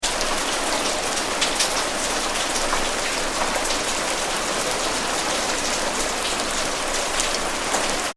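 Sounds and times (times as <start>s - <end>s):
medium rain on a street: 0.0s - 8.1s.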